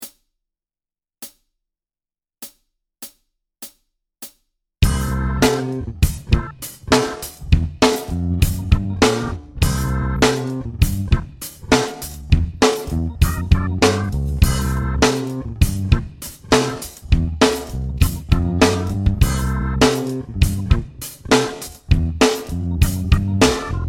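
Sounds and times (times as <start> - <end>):
funk backing track without guitar: 4.8 - 23.8.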